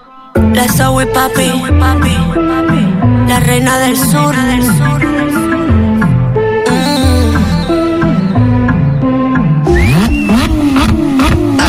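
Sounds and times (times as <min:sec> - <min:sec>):
speech: 0:00.4 - 0:05.5
car engine revving: 0:05.5 - 0:11.6.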